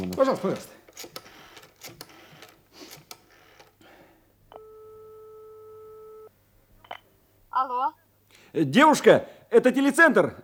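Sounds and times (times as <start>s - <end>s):
speech: 0.2s - 1.2s, 7.6s - 10.4s
telephone dialling tone: 4.5s - 6.3s.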